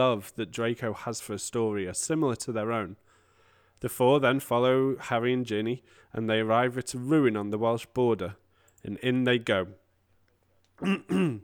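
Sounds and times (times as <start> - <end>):
speech: 0.0 - 3.1, 3.8 - 9.8, 10.8 - 11.4
person clearing throat: 10.8 - 11.4.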